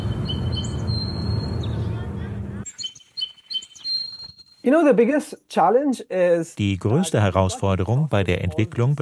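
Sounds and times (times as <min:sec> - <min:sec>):
birds chirping in a park: 0:00.0 - 0:04.8
speech: 0:04.7 - 0:08.9.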